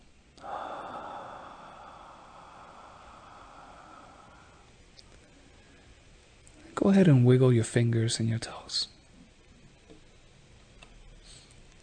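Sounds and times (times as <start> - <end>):
deep breath in during a guided yoga relaxation practice: 0.4 - 6.0
speech: 6.8 - 9.0.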